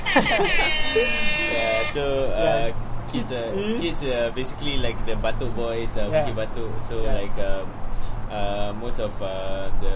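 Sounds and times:
button-triggered electronic buzzer droning: 0.0s - 2.0s
laughter: 0.0s - 4.5s
speech: 0.2s - 9.9s.

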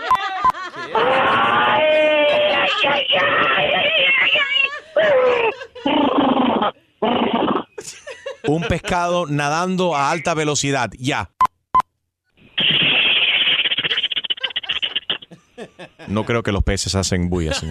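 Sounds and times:
laughter: 0.0s - 6.0s, 7.8s - 9.3s, 13.8s - 16.6s, 17.3s - 17.6s
person vocally imitating a giraffe giving birth: 0.9s - 7.8s, 12.6s - 15.3s
speech: 8.5s - 11.4s, 16.1s - 17.6s.

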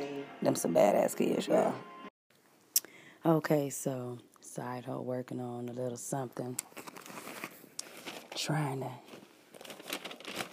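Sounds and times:
speech: 0.4s - 2.0s, 3.2s - 6.8s, 8.4s - 9.1s
papers rustling and crinkling while being shuffled: 6.6s - 10.5s.

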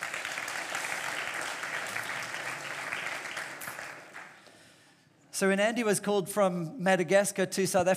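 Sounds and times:
crowd clapping: 0.0s - 4.6s
speech: 5.4s - 7.9s.

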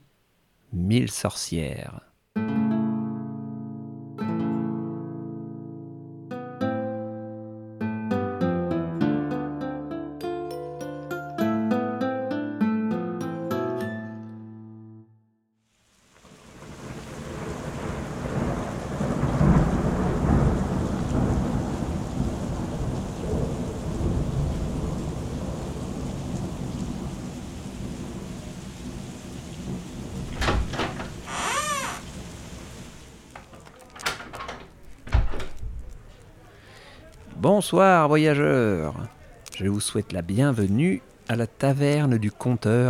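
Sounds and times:
speech: 0.8s - 2.1s, 37.7s - 39.0s, 39.6s - 42.8s
tonal music: 2.4s - 15.4s
steady downpour of heavy rain: 15.7s - 41.4s
deep rolling thunder: 16.4s - 31.2s
high creaking whine: 31.3s - 32.1s.

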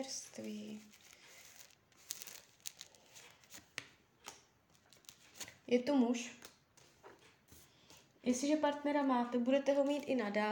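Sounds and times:
speech: 0.0s - 1.0s, 5.7s - 6.5s, 8.2s - 10.5s
tarot cards rustling: 0.2s - 5.6s.

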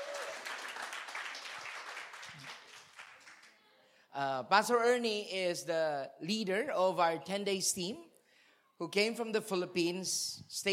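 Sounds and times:
crowd applauding: 0.0s - 3.6s
speech: 4.2s - 8.1s, 8.8s - 10.7s.

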